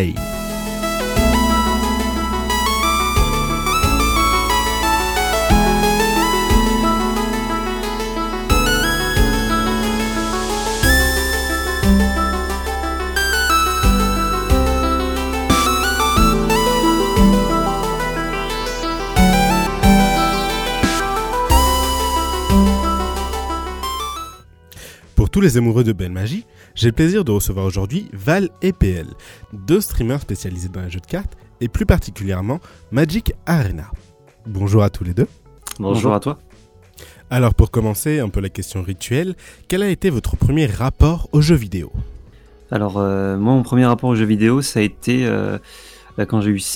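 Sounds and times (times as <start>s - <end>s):
speech: 0.0s - 0.3s, 25.4s - 42.1s, 42.7s - 46.7s
video game soundtrack music with deep bass and bright melodic lines: 0.1s - 24.4s.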